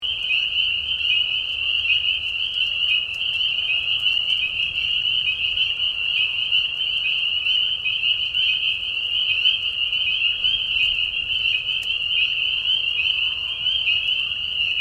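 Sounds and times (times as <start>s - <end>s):
spring peepers mating chorus in a marsh at night in Tiny, Ontario: 0.0s - 14.7s.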